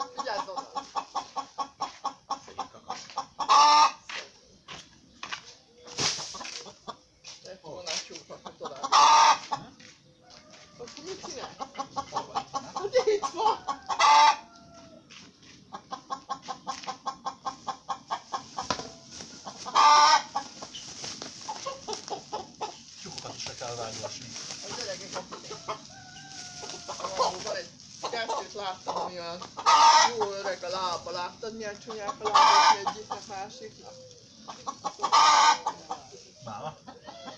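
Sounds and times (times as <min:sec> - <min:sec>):
rapid repetitive clucking: 0:00.0 - 0:05.4, 0:06.1 - 0:25.9, 0:26.6 - 0:37.3
rooster crowing: 0:10.3 - 0:11.2, 0:13.5 - 0:15.2, 0:25.4 - 0:27.4.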